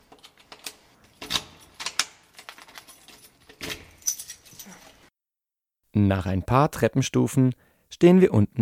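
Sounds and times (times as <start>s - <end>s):
bunch of keys jangling while searching for the right key: 0.3s - 5.1s
speech: 6.0s - 8.5s.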